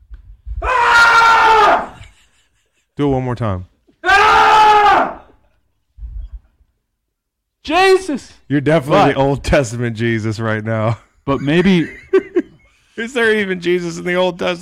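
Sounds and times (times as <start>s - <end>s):
man screaming in frustration: 0.6s - 2.0s, 4.0s - 5.3s
laughter: 1.9s - 3.0s, 10.9s - 13.2s
speech: 3.0s - 3.7s, 7.7s - 12.0s, 13.0s - 14.5s.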